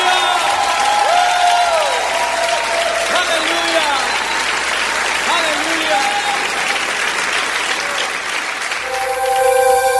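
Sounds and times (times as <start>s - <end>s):
many hands clapping at a church worship service: 0.0s - 9.9s
held gliding tone: 8.8s - 9.9s.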